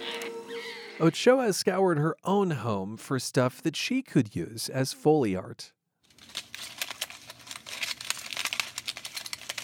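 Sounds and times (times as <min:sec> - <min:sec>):
speech: 0:01.0 - 0:05.8
aluminum foil crumpled and crinkled by hand: 0:06.1 - 0:09.6.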